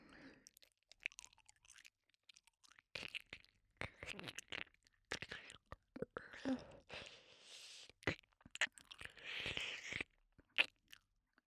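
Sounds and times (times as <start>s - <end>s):
person eating, crunching and chewing: 0.5s - 5.8s, 8.0s - 11.0s.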